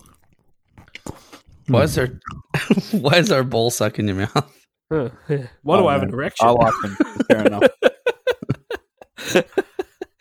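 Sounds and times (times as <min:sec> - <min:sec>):
person chewing and crunching Cadbury Snack chocolate: 0:00.0 - 0:02.6
speech: 0:01.7 - 0:07.9, 0:09.3 - 0:09.6
laughter: 0:06.4 - 0:10.2.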